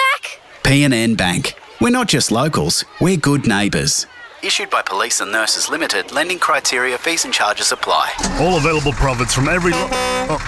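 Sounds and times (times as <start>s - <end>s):
speech: 0.7s - 10.4s
vehicle horn beep: 9.6s - 10.4s.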